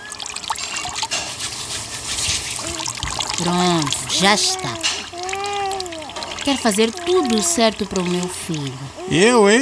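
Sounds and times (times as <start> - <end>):
water poured over hands during handwashing with soap: 0.0 - 8.8
hands rubbing with soap: 1.0 - 5.1
speech: 3.4 - 4.9, 6.4 - 9.6.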